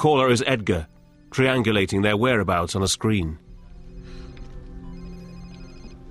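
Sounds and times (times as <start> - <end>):
speech: 0.0 - 3.4
cell phone ringtone inside a bag: 4.1 - 6.0.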